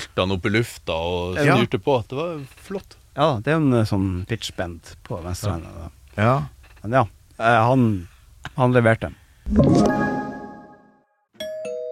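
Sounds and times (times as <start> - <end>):
speech: 0.1 - 9.9
doorbell ding-dong chime: 9.7 - 11.9.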